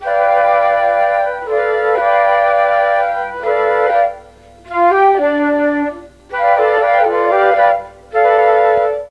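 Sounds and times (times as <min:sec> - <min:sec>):
mellotron flute note D4: 0:00.0 - 0:09.0.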